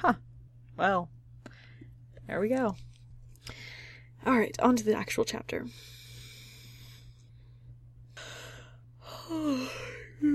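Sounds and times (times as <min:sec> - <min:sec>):
speech: 0:00.0 - 0:01.2, 0:02.3 - 0:02.9, 0:04.2 - 0:06.0, 0:09.3 - 0:10.3
person yawning with a groaning tone: 0:09.0 - 0:10.3.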